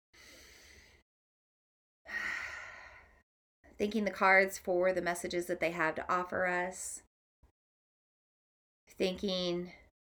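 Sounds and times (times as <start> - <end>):
deep breath: 0.2 - 1.0, 2.1 - 3.2
speech: 3.8 - 7.1, 9.0 - 9.8.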